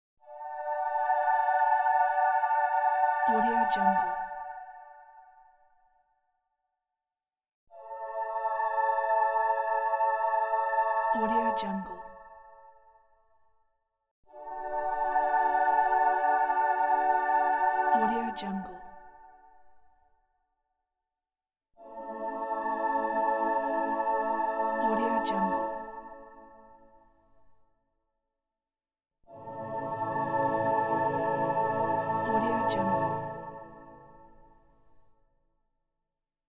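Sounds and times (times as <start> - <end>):
heaven angel choir singing: 0.2 - 5.6, 7.7 - 12.6, 14.3 - 19.6, 21.8 - 26.8, 29.3 - 34.4.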